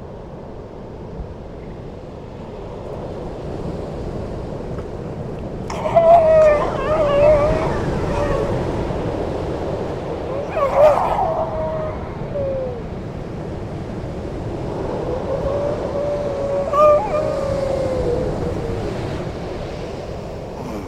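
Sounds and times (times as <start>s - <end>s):
surf noise on the coast at Horsey Gap, Norfolk, England: 0.0s - 20.8s
grey seal wailing moans at Horsey Gap, Norfolk, England: 5.7s - 9.3s, 10.1s - 13.0s, 14.8s - 19.1s.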